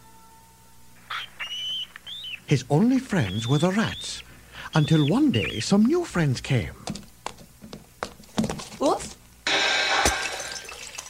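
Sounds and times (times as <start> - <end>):
speech: 2.5 - 7.0
glass ball shattering on the street above a sewer: 9.5 - 11.0
tinkling glass shards splashing into a sewer: 10.0 - 11.0.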